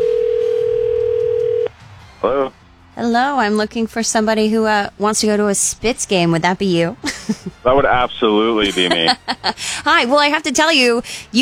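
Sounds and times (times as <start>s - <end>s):
telephone dial tone of a call being put through: 0.0s - 1.7s
speech: 3.1s - 11.4s
laughter: 7.0s - 10.0s.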